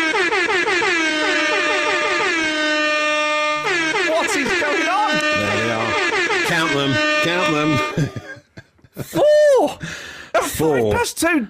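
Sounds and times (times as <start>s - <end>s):
loud air horn blasts: 0.0s - 8.0s
laughter: 4.4s - 5.9s, 6.8s - 10.8s
speech: 8.0s - 8.4s, 10.6s - 11.4s.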